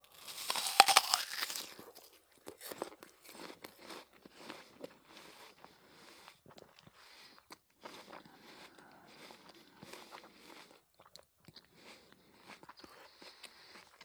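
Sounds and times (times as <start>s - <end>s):
person chewing apple: 0.0s - 3.0s
person biting an apple: 0.0s - 3.4s
breathing: 7.0s - 10.7s.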